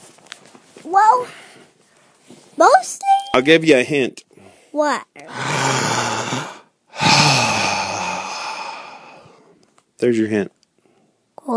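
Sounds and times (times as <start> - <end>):
speech: 0.8 - 1.4, 2.6 - 5.6, 10.0 - 10.6
long breaths or sighs: 1.2 - 2.1, 4.3 - 9.6, 10.8 - 11.2.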